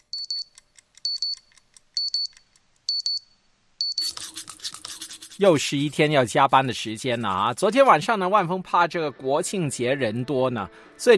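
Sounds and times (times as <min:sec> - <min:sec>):
alarm clock ringing with rapid high-pitched beeps: 0:00.1 - 0:01.4, 0:02.0 - 0:02.3, 0:02.9 - 0:04.2
speech: 0:05.4 - 0:11.1.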